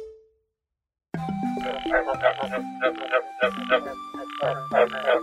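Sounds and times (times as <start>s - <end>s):
croaking frog calls pitched into a bouncing tune: 1.4s - 5.2s.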